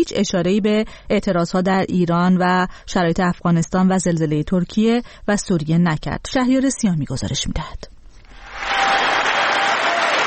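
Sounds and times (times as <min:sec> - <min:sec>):
speech: 0:00.0 - 0:07.9
crowd applauding in the US Congress before the annual address: 0:08.3 - 0:10.2.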